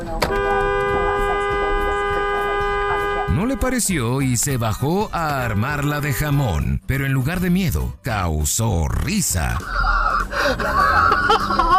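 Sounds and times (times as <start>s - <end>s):
car horn honking: 0.0s - 6.4s
speech: 3.6s - 11.7s
laughter: 9.5s - 11.7s.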